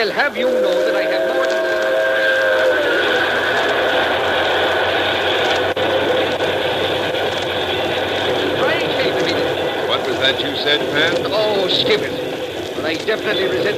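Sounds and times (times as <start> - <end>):
speech: 0.0 - 1.4, 10.3 - 12.2, 12.8 - 13.7
4-6-4 Hudson type steam locomotive hauling a freight train: 0.0 - 13.7.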